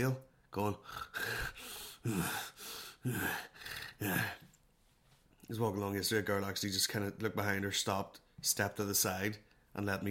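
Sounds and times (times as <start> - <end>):
speech: 0.0 - 4.5, 5.5 - 10.0
person imitating heavy breathing with a cold: 0.7 - 4.5.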